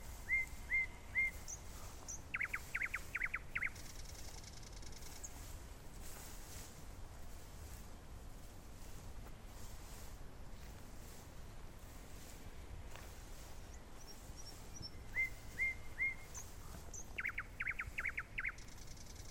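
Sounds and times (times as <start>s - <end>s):
steady low background noise: 0.0s - 19.2s
Common Nightingale song with whistles and buzzy trill: 0.1s - 5.3s, 13.6s - 19.2s.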